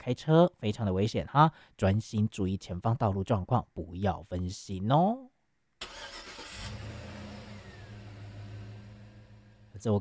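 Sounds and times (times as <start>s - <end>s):
speech: 0.0s - 6.1s, 9.8s - 9.9s
car engine cranking and settling into a low rumble: 5.8s - 9.8s.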